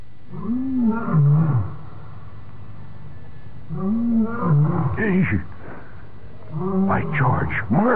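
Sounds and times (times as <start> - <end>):
lion roaring: 0.3 - 2.0, 3.7 - 5.5, 6.4 - 7.9
speech: 5.0 - 5.5, 7.0 - 7.9.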